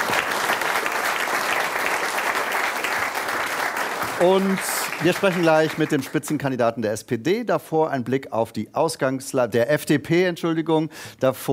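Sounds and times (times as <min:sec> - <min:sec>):
audience applause: 0:00.0 - 0:06.4
speech: 0:04.2 - 0:11.5.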